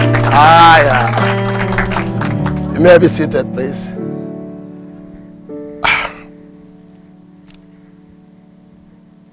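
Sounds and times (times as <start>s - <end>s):
held organ-like chord: 0.0s - 9.3s
speech: 2.8s - 4.0s
audience member sneezing during a church service: 5.8s - 6.3s.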